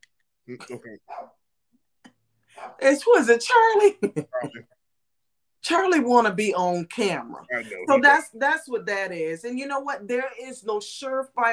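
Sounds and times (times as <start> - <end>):
speech: 0.5 - 1.4, 2.7 - 4.8, 5.6 - 11.5
dog barking: 1.1 - 1.4, 2.6 - 2.8.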